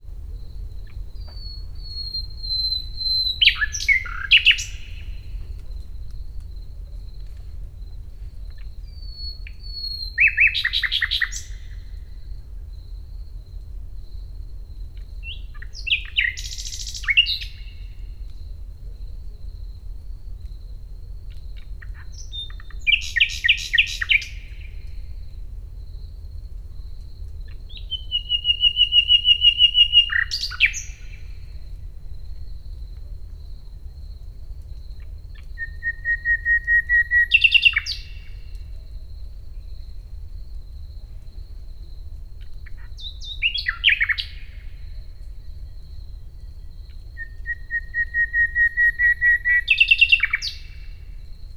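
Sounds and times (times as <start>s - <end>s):
nightingale singing in nature: 0.0s - 12.4s, 14.9s - 18.6s, 21.4s - 25.4s, 27.4s - 32.1s, 34.7s - 39.9s, 41.0s - 51.3s.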